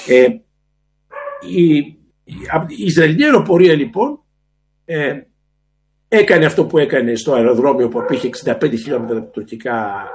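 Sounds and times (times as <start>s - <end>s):
speech: 0.0s - 0.4s, 1.4s - 4.2s, 4.9s - 5.3s, 6.1s - 10.1s
pet dogs barking indoors during a video call: 1.1s - 1.6s, 7.8s - 10.1s.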